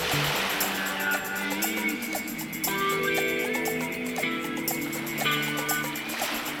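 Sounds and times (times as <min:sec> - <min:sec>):
swimming pool water splashing and lapping: 0:00.0 - 0:06.5.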